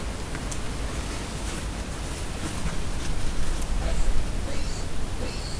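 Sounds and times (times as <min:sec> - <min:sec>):
edible dormouse calling in nature in Perkupa: 0:00.0 - 0:05.5.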